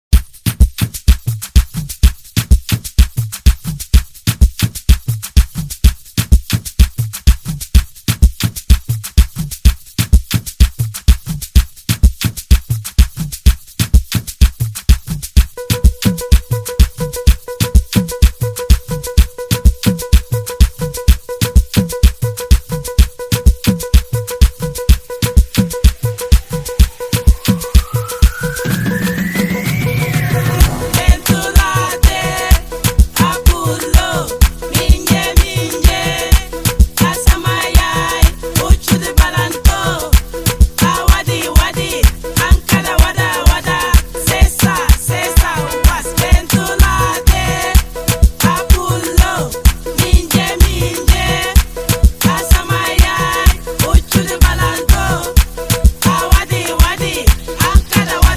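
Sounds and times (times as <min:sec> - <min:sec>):
African drums: 0:00.1 - 0:37.4, 0:38.3 - 0:58.3
Azeri bass music: 0:00.1 - 0:58.3.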